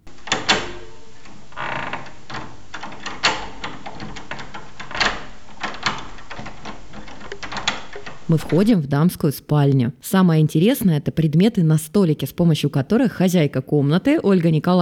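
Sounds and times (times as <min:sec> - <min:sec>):
key turning in an old 19th-century door lock: 0:00.0 - 0:08.3
speech: 0:08.3 - 0:14.8.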